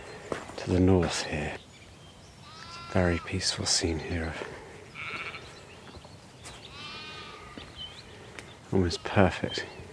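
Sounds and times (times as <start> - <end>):
speech: 0.6 - 1.6, 2.9 - 4.6, 8.7 - 9.8
sheep bleating in a field on farmland: 2.4 - 3.3, 4.9 - 5.5, 6.7 - 7.7.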